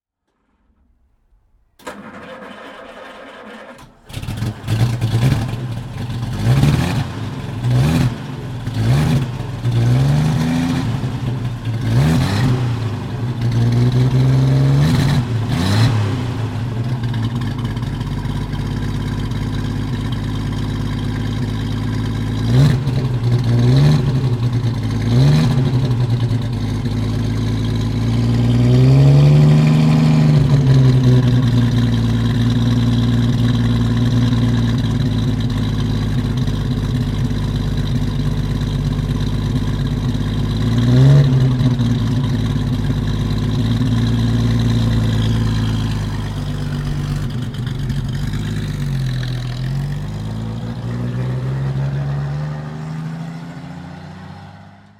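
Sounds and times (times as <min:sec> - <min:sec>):
Talbot-Lago T120 Graber car: 0:00.3 - 0:54.9.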